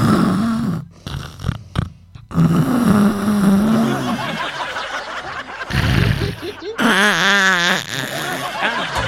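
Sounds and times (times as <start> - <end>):
person mimicking loud snoring: 0.0 - 4.3, 5.6 - 8.7
chuckles: 3.6 - 9.0.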